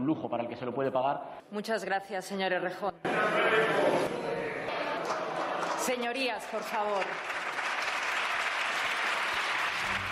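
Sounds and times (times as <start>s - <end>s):
speech: 0.0s - 4.2s, 5.8s - 7.4s
applause from parliament benches: 4.7s - 10.1s.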